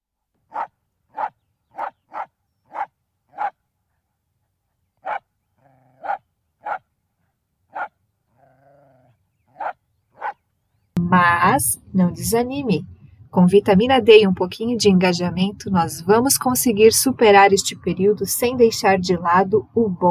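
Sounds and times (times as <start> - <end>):
dog barking: 0.5 - 3.6, 5.0 - 6.8, 7.7 - 10.4
speech: 11.2 - 20.0.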